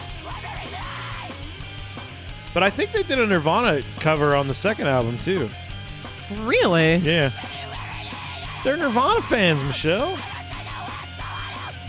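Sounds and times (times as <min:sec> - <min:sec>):
strained shouted emo-style vocal: 0:00.0 - 0:02.4, 0:06.3 - 0:11.8
dense loud rock backing with heavy bass and distorted guitars: 0:00.0 - 0:11.8
speech: 0:02.6 - 0:05.6, 0:06.3 - 0:07.6, 0:08.6 - 0:10.3.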